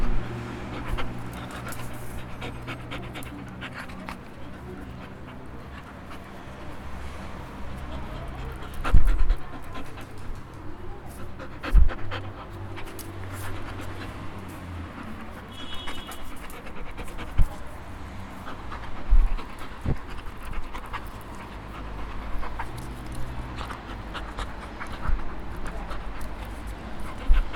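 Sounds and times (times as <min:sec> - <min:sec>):
dog breathing in uneven low breaths: 0:00.0 - 0:27.5.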